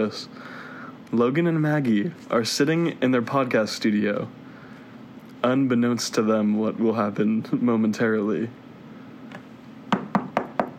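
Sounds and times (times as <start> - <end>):
speech: 0.0 - 4.4, 5.4 - 8.6
knocking on a wooden door: 9.9 - 10.7.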